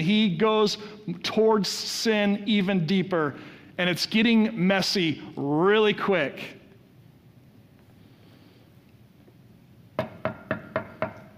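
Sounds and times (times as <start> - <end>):
speech: 0.0 - 6.6
knocking on a door: 10.0 - 11.2.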